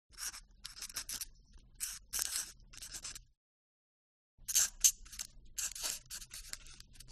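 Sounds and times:
quill writing in an office: 0:00.1 - 0:03.2, 0:04.5 - 0:06.9.

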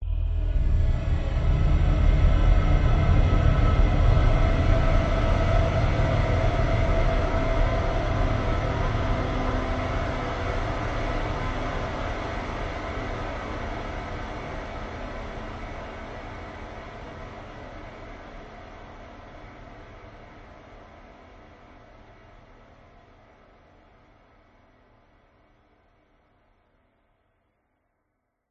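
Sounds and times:
evil menacing airy horror drone: 0:00.0 - 0:23.6.

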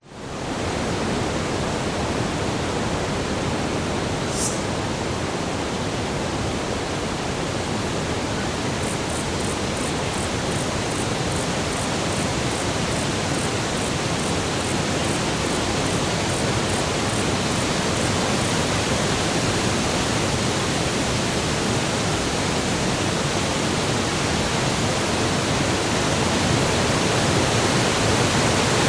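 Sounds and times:
strong wind in forest tree tops: 0:00.0 - 0:28.8
forest insects: 0:00.1 - 0:28.8.

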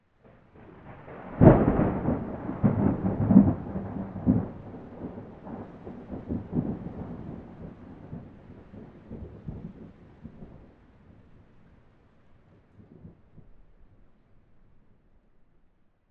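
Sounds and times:
thunder in nature: 0:00.2 - 0:11.1, 0:12.7 - 0:13.6.

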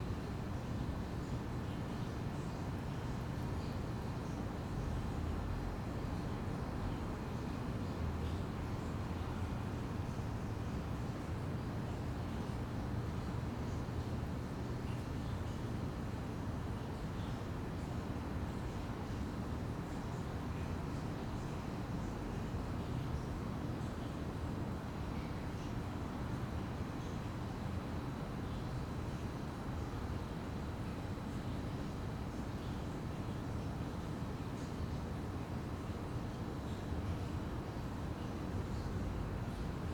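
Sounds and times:
slight water streak from sewer on quiet street: 0:00.1 - 0:39.9.

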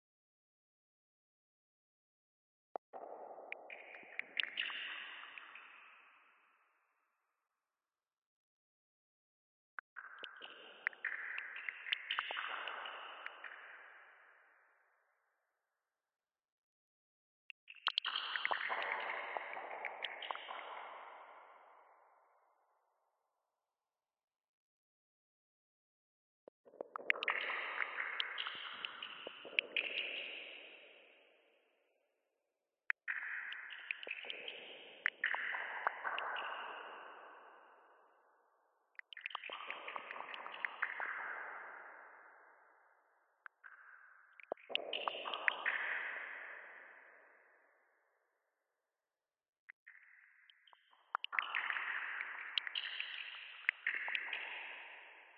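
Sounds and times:
sparse water drops dripping with echo in sewers: 0:02.8 - 0:06.7, 0:09.8 - 0:14.4, 0:17.6 - 0:22.4, 0:26.5 - 0:31.3, 0:32.9 - 0:47.4, 0:49.7 - 0:55.3.

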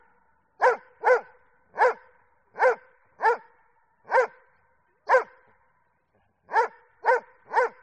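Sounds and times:
Doberman barking: 0:00.6 - 0:04.4, 0:05.1 - 0:05.4, 0:06.5 - 0:07.8.

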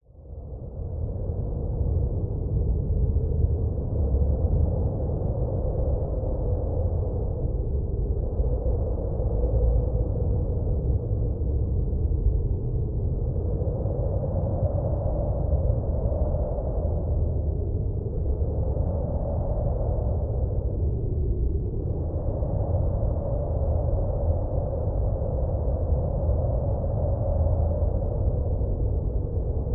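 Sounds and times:
cold strong stormy blizzard wind over a snow icefield: 0:00.0 - 0:29.7.

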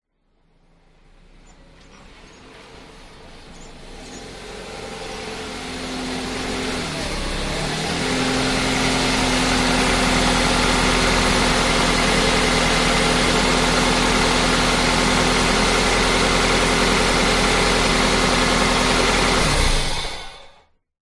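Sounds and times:
car approaching into garage and idling: 0:00.2 - 0:20.7.

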